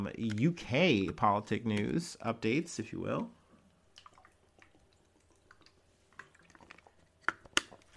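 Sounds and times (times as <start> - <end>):
speech: 0.0 - 3.4
person drinking water with small sips: 3.5 - 7.9.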